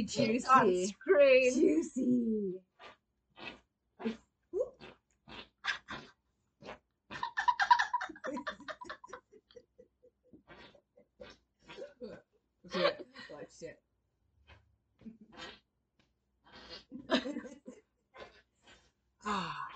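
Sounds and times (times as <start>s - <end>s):
speech: 0.0s - 4.2s
wet squelchy armpit farts: 2.8s - 7.5s, 10.4s - 11.9s, 15.0s - 15.7s
laughter: 5.7s - 6.0s, 7.2s - 9.9s, 12.7s - 13.4s, 16.9s - 17.8s.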